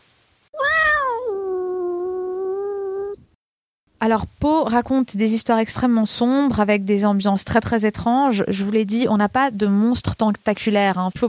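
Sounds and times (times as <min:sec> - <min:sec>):
cat yowling meow: 0:00.6 - 0:03.2
speech: 0:04.0 - 0:11.2.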